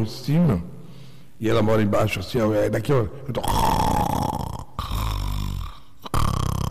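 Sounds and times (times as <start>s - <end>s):
speech: 0.0s - 0.7s, 1.4s - 3.8s
woman snoring: 3.5s - 6.6s.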